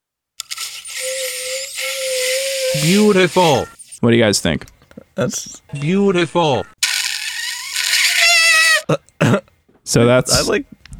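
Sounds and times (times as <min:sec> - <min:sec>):
electric toothbrush buzzing: 0:00.4 - 0:04.0, 0:06.8 - 0:08.9
speech: 0:02.8 - 0:06.8, 0:08.9 - 0:10.8.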